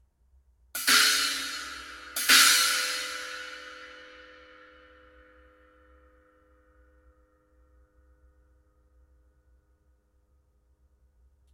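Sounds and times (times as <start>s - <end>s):
Zildjian cymbal: 0.8s - 8.9s.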